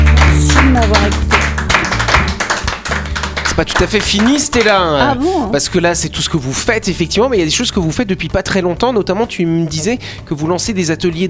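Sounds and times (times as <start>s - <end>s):
small crowd clapping: 0.0s - 5.2s
speech: 3.6s - 11.2s.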